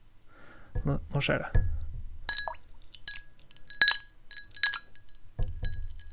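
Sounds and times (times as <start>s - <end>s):
speech: 0.8s - 1.7s
ice cubes dropped by hand into a glass of water: 2.3s - 6.1s.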